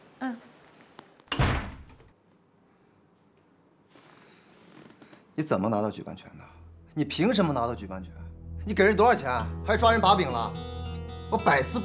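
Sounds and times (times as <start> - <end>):
door being shut with heavy thud: 1.3 - 2.1
speech: 5.4 - 11.8.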